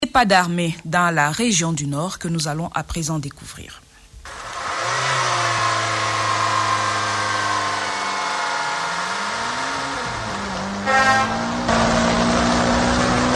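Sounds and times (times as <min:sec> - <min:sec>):
speech: 0:00.2 - 0:03.8
vehicle engine droning on a national highway in a northern region: 0:04.3 - 0:13.3.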